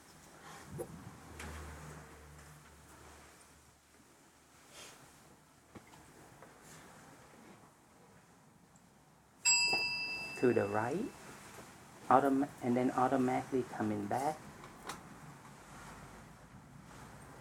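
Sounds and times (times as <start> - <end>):
single bell struck with bright clear ringing tone: 9.5 - 11.2
speech: 10.4 - 11.2, 12.1 - 14.5.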